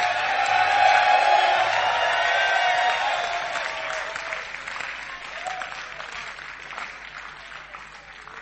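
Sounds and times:
large church audience clapping: 0:00.0 - 0:08.4.

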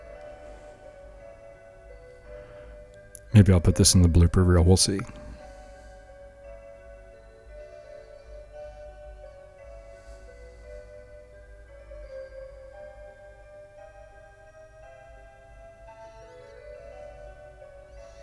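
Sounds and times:
new clock ticking: 0:03.1 - 0:05.4
speech: 0:03.3 - 0:05.3.

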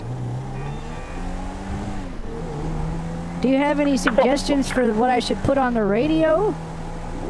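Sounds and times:
car engine droning as the car drives too fast: 0:00.0 - 0:07.2
speech: 0:03.4 - 0:06.7.

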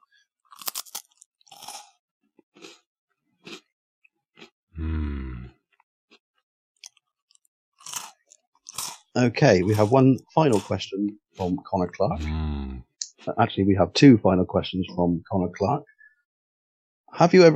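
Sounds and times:
crunchy biscuits being eaten, crunching and chewing: 0:00.4 - 0:11.5
deep voiced grunt: 0:04.8 - 0:05.6, 0:12.0 - 0:12.9
speech: 0:09.2 - 0:12.6, 0:13.2 - 0:15.9, 0:17.1 - 0:17.5.

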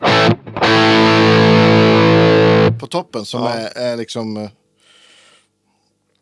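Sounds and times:
heavily distorted electric guitar through an amp pedal: 0:00.0 - 0:02.8
speech: 0:03.0 - 0:04.6.

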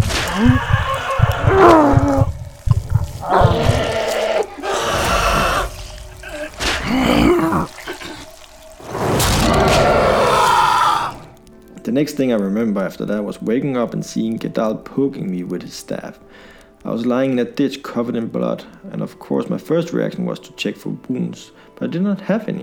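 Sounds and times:
guttural animal-like roar: 0:00.0 - 0:02.3, 0:03.2 - 0:11.4
person screaming in excruciating pain from extreme muscle spasms: 0:00.2 - 0:02.3, 0:03.2 - 0:08.2
speech: 0:00.4 - 0:00.8, 0:12.0 - 0:22.6.

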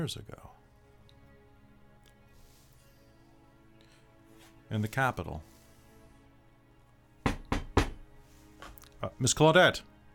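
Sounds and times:
speech: 0:00.0 - 0:00.5, 0:04.7 - 0:05.5, 0:09.0 - 0:09.9
quick solid knocks on a door: 0:07.2 - 0:08.1.

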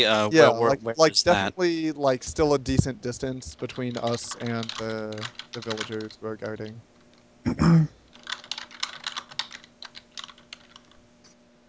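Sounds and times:
speech: 0:00.0 - 0:08.0
typing on a computer keyboard: 0:03.4 - 0:06.8, 0:08.1 - 0:11.0
person clearing throat: 0:07.4 - 0:08.0.

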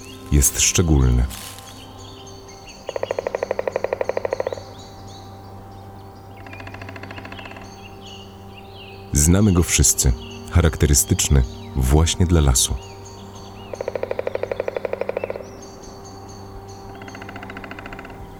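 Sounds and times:
soft birdsong in a beech forest: 0:00.0 - 0:18.3
steady low hum: 0:00.0 - 0:18.3
speech: 0:00.3 - 0:01.6, 0:09.3 - 0:12.9
woodpecker drumming on a tree in a leafless beech forest in Tatra National Park: 0:01.9 - 0:10.2, 0:12.8 - 0:18.3.

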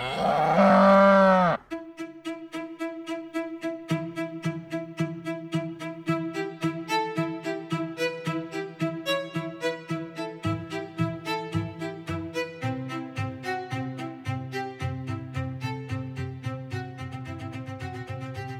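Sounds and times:
cow mooing: 0:00.0 - 0:01.6
rhythmic plucked tonal music: 0:01.7 - 0:18.5.

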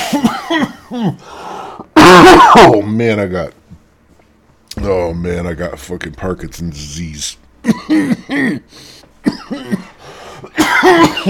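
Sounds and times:
harsh coughing after inhaling a gnat: 0:00.0 - 0:01.2, 0:02.0 - 0:02.8, 0:07.6 - 0:11.2
speech: 0:00.9 - 0:01.4, 0:02.2 - 0:03.6, 0:04.8 - 0:11.2.

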